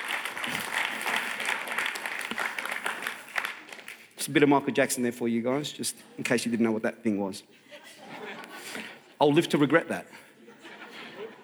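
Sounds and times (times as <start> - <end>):
audience applause: 0.0 - 4.1
speech: 4.2 - 7.8, 9.2 - 10.2
laughter: 7.6 - 11.4.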